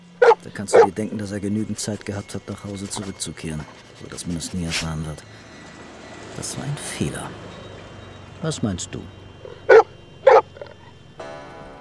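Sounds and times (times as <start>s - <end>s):
low hum: 0.0s - 11.8s
dog barking: 0.2s - 1.0s, 9.4s - 10.7s
speech: 0.4s - 5.6s, 6.4s - 7.6s, 8.4s - 9.8s.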